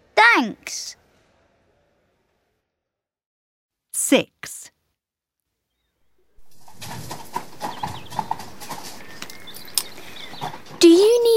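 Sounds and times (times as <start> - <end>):
speech: 0.4 - 1.0, 4.0 - 4.7, 10.8 - 11.3
horse hooves clip-clopping: 6.4 - 11.0
faint chirp: 9.0 - 10.7.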